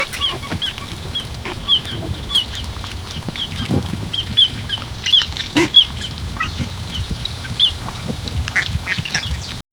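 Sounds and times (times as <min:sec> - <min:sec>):
goats bleating: 0:00.0 - 0:06.9
goats crunching: 0:00.0 - 0:09.6.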